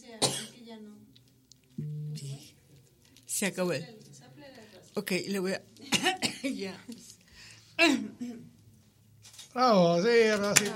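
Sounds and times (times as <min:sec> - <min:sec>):
person coughing: 0:00.2 - 0:00.6, 0:05.9 - 0:06.6
speech: 0:03.4 - 0:04.1, 0:05.0 - 0:07.1, 0:07.8 - 0:08.5, 0:09.5 - 0:10.7.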